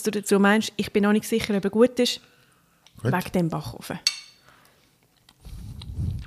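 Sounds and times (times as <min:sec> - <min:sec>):
speech: 0:00.0 - 0:02.3, 0:03.0 - 0:04.2
chewing homemade lemony rice Easter cake: 0:05.1 - 0:06.2.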